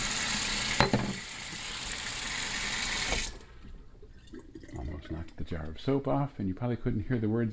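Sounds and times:
kitchen sink garbage disposal running with water: 0.0s - 5.4s
water trickling: 0.7s - 5.8s
speech: 5.5s - 7.5s.

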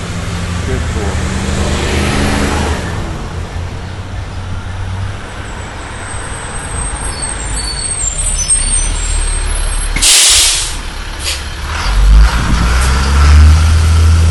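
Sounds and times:
broadband road noise: 0.0s - 14.2s
large school bus engine rumbling: 0.0s - 14.2s
hissing burst of school bus air brakes: 8.6s - 11.5s.

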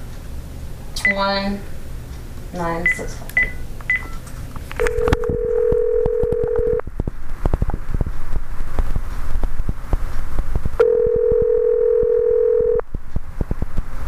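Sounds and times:
faint hum: 0.0s - 14.0s
long steady telephone tone: 4.8s - 6.8s, 10.8s - 12.8s.

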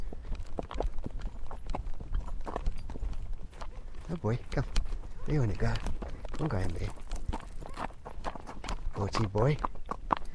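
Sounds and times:
horse hooves clip-clopping while being ridden: 0.0s - 10.3s
speech: 4.1s - 7.0s, 9.0s - 9.7s.

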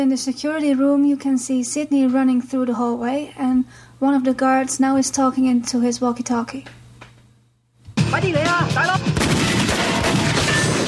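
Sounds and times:
speech: 0.0s - 6.8s, 8.1s - 9.1s
rapid gunshots from two handguns fired at a metal door: 9.1s - 10.8s.

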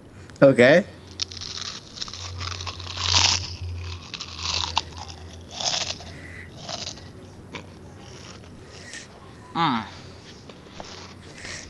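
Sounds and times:
low steady hum: 0.0s - 11.6s
speech: 0.4s - 1.0s, 9.6s - 9.9s
crunching and chewing of potato chips: 1.1s - 9.2s.

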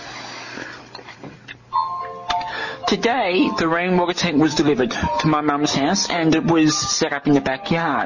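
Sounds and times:
cuckoo clock chiming: 1.7s - 6.9s
speech: 2.9s - 8.0s.

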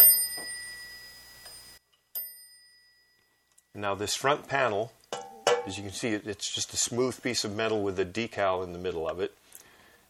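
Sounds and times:
machine bell ringing with a bright metallic tone: 0.0s - 3.8s
speech: 3.8s - 5.0s, 5.6s - 9.4s.

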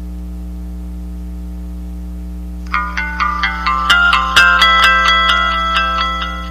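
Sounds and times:
steady low hum: 0.0s - 6.4s
mobile phone startup jingle after power-on: 2.7s - 6.4s.

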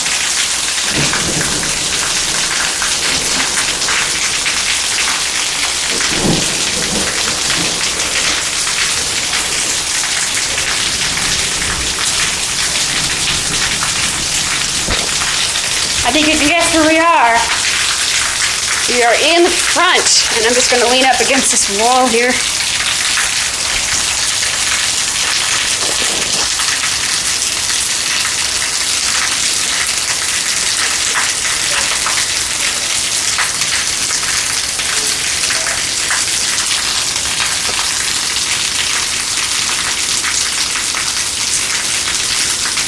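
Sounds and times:
heavy rain striking hard surfaces: 0.0s - 42.8s
speech: 18.9s - 22.6s.

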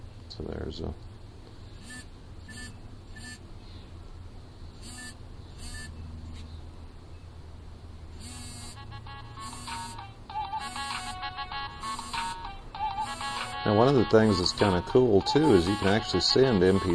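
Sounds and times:
speech: 0.4s - 1.2s, 13.7s - 16.9s
short electronic phone ringtone snippets: 1.8s - 3.4s, 4.8s - 6.0s, 8.2s - 16.9s.

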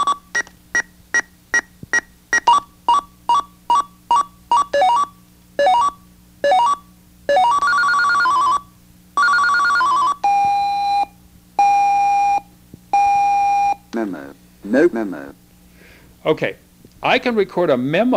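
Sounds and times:
alarm clock radio rapid electronic beeps: 0.0s - 8.6s, 9.2s - 13.8s
speech: 16.3s - 18.1s.

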